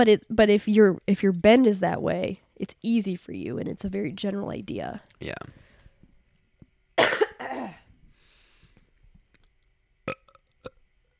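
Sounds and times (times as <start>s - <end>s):
speech: 0.0s - 5.6s
loud throaty burp: 5.2s - 5.5s, 7.0s - 7.9s, 10.1s - 10.8s
short belch: 5.2s - 5.5s, 7.0s - 7.9s, 10.1s - 10.8s.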